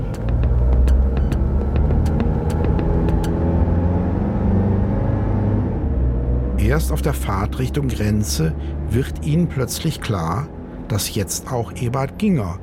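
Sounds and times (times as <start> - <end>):
car engine rumbling and driving off in first gear: 0.0 - 12.6
sharp clicks: 2.0 - 3.4
speech: 6.8 - 12.6.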